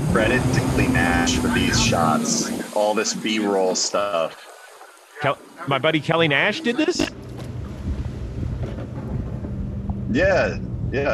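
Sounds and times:
jet ski engine running on the water: 0.0s - 4.4s, 5.2s - 11.1s
water splashing: 0.0s - 10.6s
rushing wind: 0.0s - 11.1s
speech: 0.1s - 4.5s, 5.2s - 7.2s, 10.1s - 11.1s.

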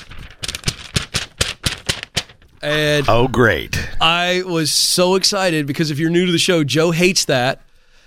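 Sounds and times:
paper being rattled and shaken: 0.0s - 3.0s
speech: 2.6s - 7.6s.

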